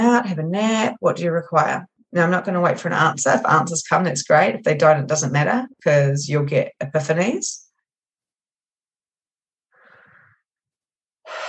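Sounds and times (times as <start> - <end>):
speech: 0.2 - 7.6
slow breath in and breathy exhale: 9.7 - 10.6, 11.2 - 11.4.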